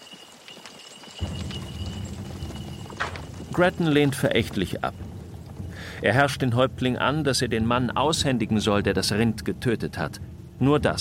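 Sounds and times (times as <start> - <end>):
horse hooves clip-clopping as riders advance on horseback: 0.0 - 7.2
speech: 3.6 - 5.0, 6.0 - 10.9.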